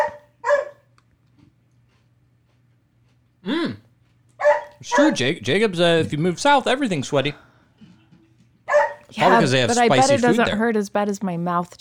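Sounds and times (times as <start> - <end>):
dog barking: 0.0 - 0.9, 4.4 - 5.2, 8.7 - 9.1
faint low hum: 0.0 - 10.8
speech: 4.8 - 7.5, 9.2 - 11.7.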